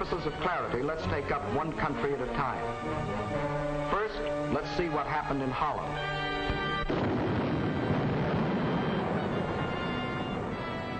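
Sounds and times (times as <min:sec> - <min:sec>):
speech: 0:00.1 - 0:06.3
artillery cannon fire and explosions in the German attack on Holland: 0:06.4 - 0:10.9.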